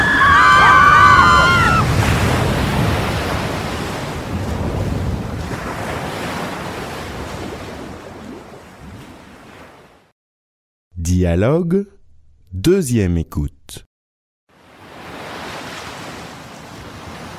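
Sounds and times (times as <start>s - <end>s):
ocean waves at sea: 0.0s - 10.1s, 14.5s - 17.3s
wind at sea: 0.0s - 10.1s, 14.5s - 17.3s
speech: 11.2s - 13.9s.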